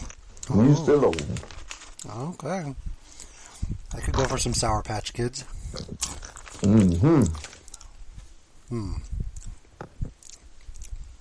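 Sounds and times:
crunchy munching and chewing of ranch-flavored snacks from a share-size bag: 0:00.0 - 0:02.4, 0:05.6 - 0:08.0, 0:08.8 - 0:11.1
speech: 0:00.5 - 0:02.9, 0:04.0 - 0:07.5, 0:08.7 - 0:09.2
person humming brief murmurs: 0:06.6 - 0:07.5, 0:08.7 - 0:09.2.

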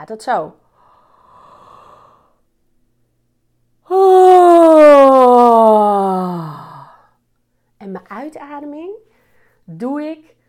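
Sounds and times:
speech: 0:00.0 - 0:00.6, 0:08.2 - 0:10.4
deep drawn-out yawn through open mouth: 0:03.9 - 0:07.1.

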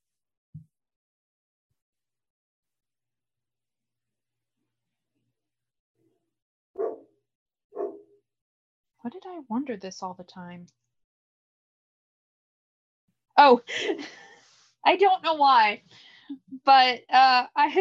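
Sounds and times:
dog barking: 0:06.8 - 0:07.1, 0:07.8 - 0:08.1
faint yip: 0:07.8 - 0:08.0
speech: 0:09.0 - 0:10.8, 0:13.4 - 0:17.7.

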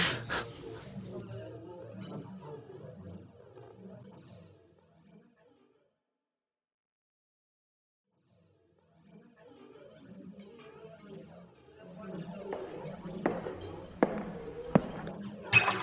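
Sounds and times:
soft murmur of voices: 0:00.0 - 0:04.3, 0:09.6 - 0:15.8
glass breaking: 0:15.5 - 0:15.8.

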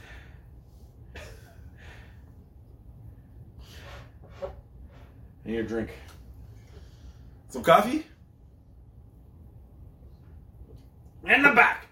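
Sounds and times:
man breathing heavily after physical exertion: 0:00.0 - 0:04.2
speech: 0:05.5 - 0:06.1, 0:07.5 - 0:08.1.

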